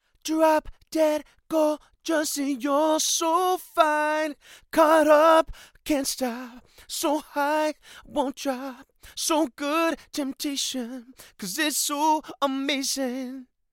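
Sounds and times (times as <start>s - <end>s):
man singing: 0.2s - 13.5s.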